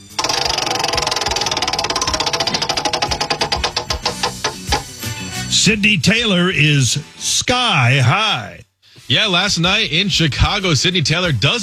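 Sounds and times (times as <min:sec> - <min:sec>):
prize wheel spinning with rapid ticking clicks: 0:00.0 - 0:04.9
speech: 0:05.6 - 0:11.6.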